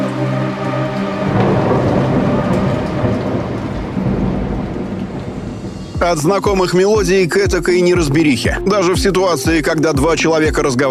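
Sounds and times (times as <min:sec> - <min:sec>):
heavy rain: 0:00.0 - 0:08.9
deep rolling thunder: 0:00.9 - 0:07.3
speech: 0:06.1 - 0:10.9.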